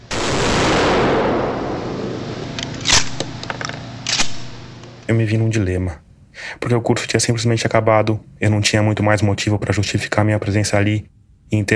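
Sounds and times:
12-gauge shotgun blast with long decay: 0:00.0 - 0:03.4
speech: 0:05.1 - 0:11.7.

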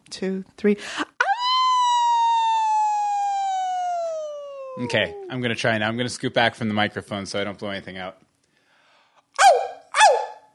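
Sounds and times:
speech: 0:00.1 - 0:01.1, 0:04.8 - 0:08.2
person imitating a howl for a howling contest: 0:01.2 - 0:05.5.

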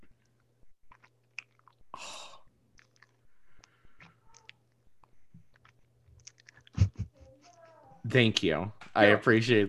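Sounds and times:
close-up chewing against the microphone: 0:00.0 - 0:01.9, 0:02.7 - 0:06.9
speech: 0:08.1 - 0:09.6.

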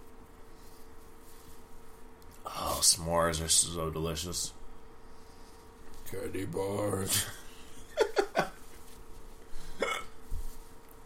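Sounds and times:
speech: 0:02.8 - 0:04.6, 0:06.1 - 0:07.4
person hiccuping: 0:09.8 - 0:10.2.

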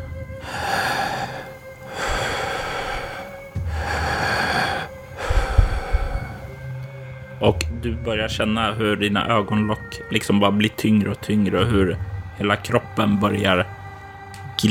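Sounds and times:
heavy breathing: 0:00.4 - 0:06.8
speech: 0:07.4 - 0:13.8.

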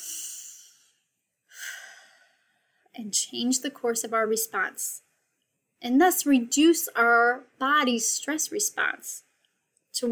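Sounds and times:
long soft deep breath: 0:00.0 - 0:02.9
speech: 0:03.0 - 0:05.1, 0:05.8 - 0:09.2.

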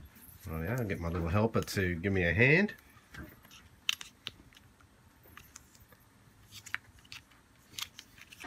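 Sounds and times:
speech: 0:00.4 - 0:03.4
small packets of dice crinkling as they are opened: 0:05.4 - 0:08.4.

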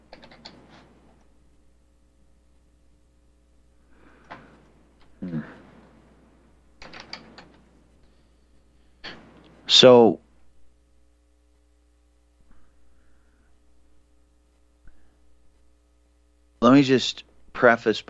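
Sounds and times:
computer keyboard typing: 0:00.0 - 0:00.8, 0:06.8 - 0:07.6
faint mechanical rattle of computer keyboard keys: 0:00.0 - 0:01.3, 0:04.2 - 0:08.1
speech: 0:09.8 - 0:10.2, 0:16.8 - 0:18.0.

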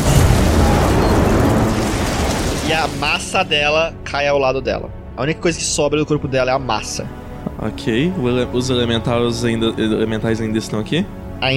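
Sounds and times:
explosion effect of ice bursting: 0:00.0 - 0:03.6
speech: 0:02.8 - 0:11.5.

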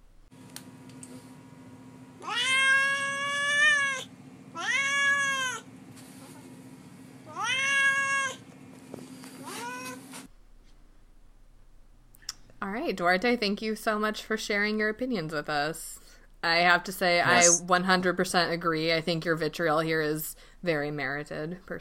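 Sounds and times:
cat meowing in drawn-out wavering cries: 0:02.2 - 0:05.6, 0:07.3 - 0:08.4, 0:09.4 - 0:10.1
speech: 0:12.9 - 0:21.7.

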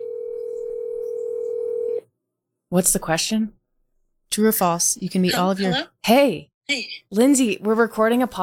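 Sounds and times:
phone line ringing tone, steady electronic hum: 0:00.0 - 0:02.0
speech: 0:02.7 - 0:03.6, 0:04.4 - 0:08.4.

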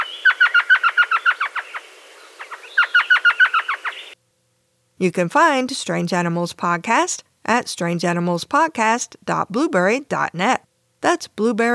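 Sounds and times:
elf owl calling in high yelping chirps: 0:00.0 - 0:04.2
speech: 0:05.0 - 0:11.7.

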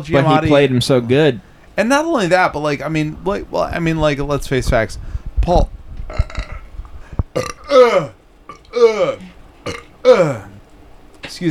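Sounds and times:
speech: 0:00.0 - 0:06.4, 0:07.4 - 0:08.2, 0:08.8 - 0:10.5, 0:11.3 - 0:11.4
person burping into a microphone: 0:06.1 - 0:06.7, 0:07.3 - 0:10.6.

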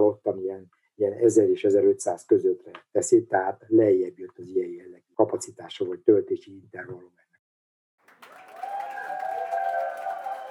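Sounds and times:
speech: 0:00.0 - 0:07.1
crowd cheering and applauding at an outdoor road cycling race: 0:08.0 - 0:10.4
whistles: 0:08.1 - 0:10.4
people shouting: 0:08.6 - 0:10.4.

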